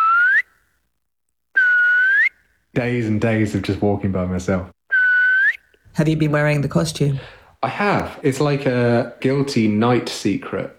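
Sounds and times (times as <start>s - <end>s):
loud sustained human whistles echoing through snowy pine forest: 0.0s - 0.6s, 1.6s - 2.4s, 4.9s - 5.7s
speech: 2.8s - 4.8s, 6.0s - 10.7s.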